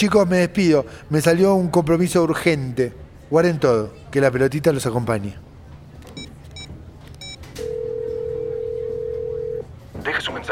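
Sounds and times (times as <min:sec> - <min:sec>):
speech: 0:00.0 - 0:05.4
low hum: 0:00.0 - 0:10.5
electronic telephone ringing: 0:06.6 - 0:09.7.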